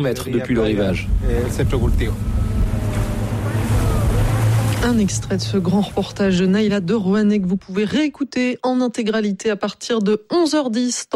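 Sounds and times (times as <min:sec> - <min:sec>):
speech: 0:00.0 - 0:02.4, 0:04.8 - 0:11.1
motorboat engine droning: 0:00.2 - 0:07.8
wind rushing past a motorboat: 0:00.9 - 0:07.3.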